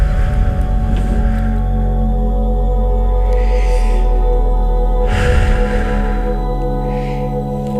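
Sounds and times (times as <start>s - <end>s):
slow deep breathing in and out: 0.0s - 7.7s
steady music: 0.0s - 7.7s.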